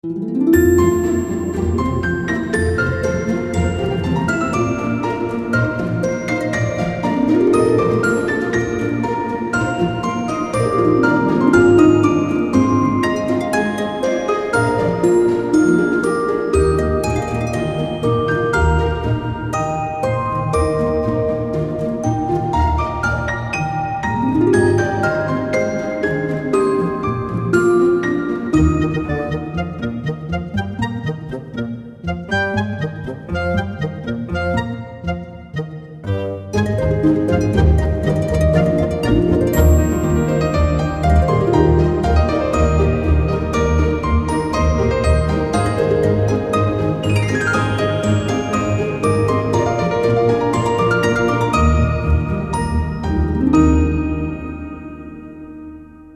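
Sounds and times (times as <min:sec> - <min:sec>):
happy Christmas music: 0:00.0 - 0:56.1.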